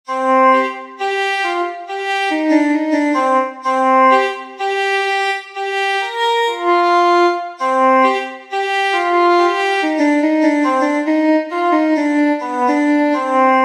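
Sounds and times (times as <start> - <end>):
fiddle: 0.1 - 13.5.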